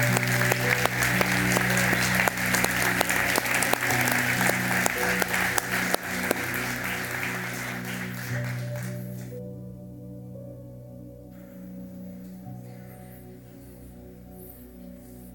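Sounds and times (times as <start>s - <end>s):
audience applauding: 0.0s - 9.4s
sustained organ-like drone: 0.0s - 9.4s.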